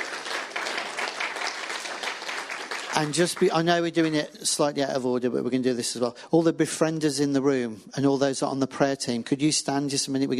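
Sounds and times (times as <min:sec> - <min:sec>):
audience applause at a gathering: 0:00.0 - 0:04.2
speech: 0:03.0 - 0:10.3.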